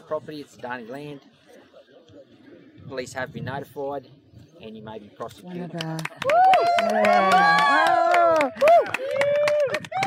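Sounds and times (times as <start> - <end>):
speech: 0.1 - 1.4, 2.9 - 10.0
scattered claps: 5.8 - 10.0
crowd of protesters cheering and shouting: 6.2 - 10.0.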